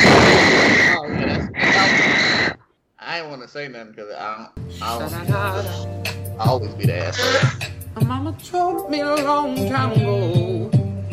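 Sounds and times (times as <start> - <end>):
loud heavy breathing close to the microphone: 0.0 - 2.8, 7.0 - 7.8
speech: 3.5 - 10.8.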